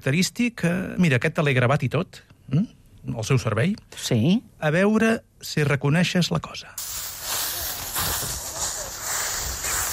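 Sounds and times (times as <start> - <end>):
speech: 0.0 - 7.1
footsteps trampling dry leaf litter: 6.9 - 9.9.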